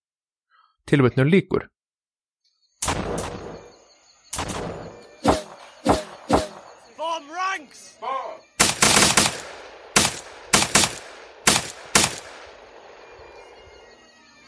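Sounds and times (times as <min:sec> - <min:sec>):
speech: 0:00.9 - 0:01.8
Snider rifle shots in battle: 0:02.8 - 0:03.7, 0:04.3 - 0:06.8, 0:08.6 - 0:13.5
voices shouting in battle: 0:05.5 - 0:08.6.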